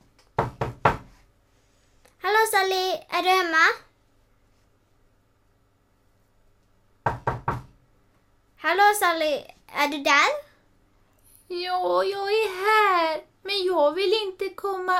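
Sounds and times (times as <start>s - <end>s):
firm knocks on a wooden door: 0.4s - 1.1s, 7.0s - 7.8s
speech: 2.5s - 3.9s, 8.6s - 10.5s, 11.5s - 14.9s.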